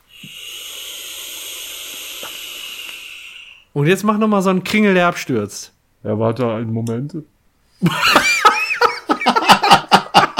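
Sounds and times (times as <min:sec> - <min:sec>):
person exhaling vapor from a vape: 0:00.0 - 0:03.7
speech: 0:03.8 - 0:08.2
laughter: 0:07.8 - 0:10.3.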